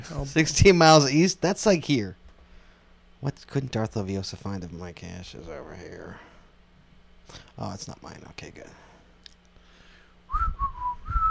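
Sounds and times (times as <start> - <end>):
speech: 0.0 - 2.2, 3.2 - 6.3, 7.3 - 8.9
person whistling a short wavering tune: 10.3 - 11.2.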